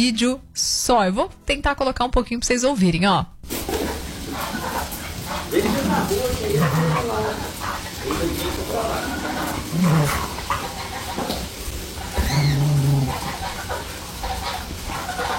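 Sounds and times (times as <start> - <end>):
speech: 0.0 - 3.8
dogs barking and yipping playfully: 3.6 - 15.3
voices murmuring: 3.9 - 15.3.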